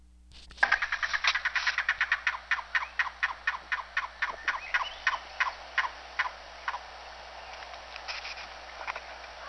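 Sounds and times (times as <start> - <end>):
low steady hum: 0.0 - 9.4
yellow-billed cuckoo knocking call: 0.6 - 6.9.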